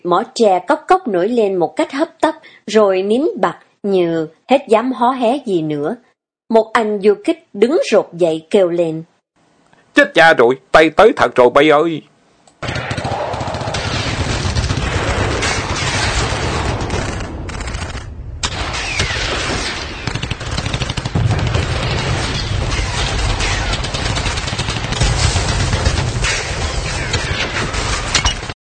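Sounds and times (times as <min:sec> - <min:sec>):
speech: 0:00.0 - 0:09.1, 0:10.0 - 0:12.1
sustained volleys of gunfire sound effect: 0:12.6 - 0:28.5.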